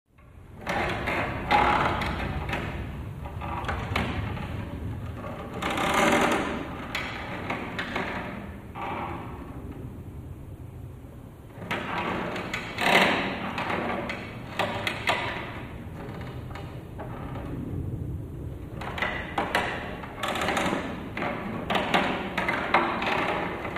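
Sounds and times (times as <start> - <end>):
wooden seat creaking: 0.2 - 10.2, 11.4 - 23.7.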